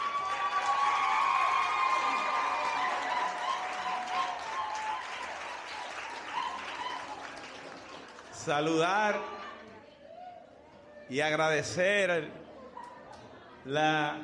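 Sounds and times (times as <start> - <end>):
scattered cheers and shouts: 0.0 - 7.5
large audience applauding: 0.0 - 8.6
speech: 8.4 - 9.5, 11.1 - 12.4, 13.6 - 14.2.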